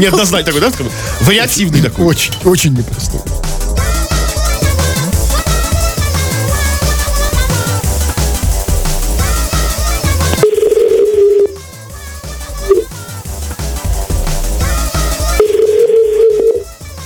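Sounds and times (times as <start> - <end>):
speech: 0.0 - 3.5
busy music: 0.0 - 17.0
phone ringing tones: 10.2 - 11.6, 15.4 - 16.8
phone number being dialed: 10.3 - 11.6, 15.4 - 16.6.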